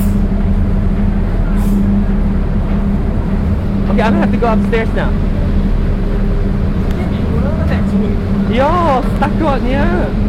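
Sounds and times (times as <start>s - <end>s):
droning engine rumble from heavy road traffic: 0.0s - 10.2s
bus air brakes releasing: 1.4s - 2.1s
speech: 4.0s - 5.3s, 8.0s - 10.2s.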